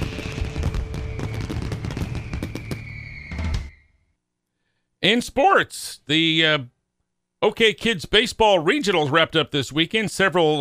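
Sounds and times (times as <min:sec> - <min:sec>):
fireworks exploding: 0:00.0 - 0:03.9
speech: 0:05.0 - 0:06.7, 0:07.4 - 0:10.5.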